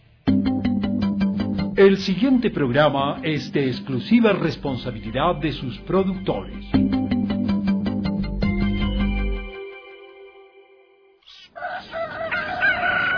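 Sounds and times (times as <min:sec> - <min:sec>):
steady tonal notes: 0:00.3 - 0:11.0
speech: 0:01.8 - 0:06.9
rooster crowing: 0:11.6 - 0:13.1.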